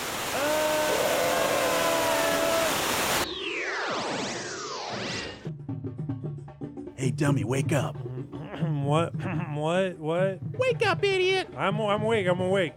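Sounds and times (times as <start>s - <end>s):
rushing waterfall roar: 0.0s - 3.2s
sweeping swooping whooshes: 3.2s - 5.6s
speech: 7.1s - 12.7s.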